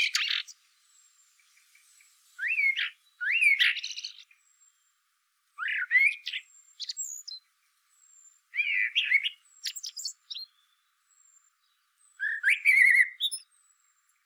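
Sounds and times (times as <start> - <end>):
faint high thin whistles from another bird: 0.0 - 0.6, 2.4 - 4.4, 5.6 - 7.4, 8.1 - 10.5, 12.2 - 13.6
Eurasian blackbird Turdus merula song of mellow warbled phrases: 0.0 - 14.2.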